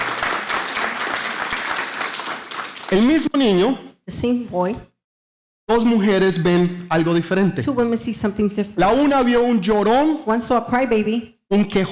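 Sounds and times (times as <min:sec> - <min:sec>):
audience applauding: 0:00.0 - 0:03.3
speech: 0:02.9 - 0:04.9, 0:05.7 - 0:11.9.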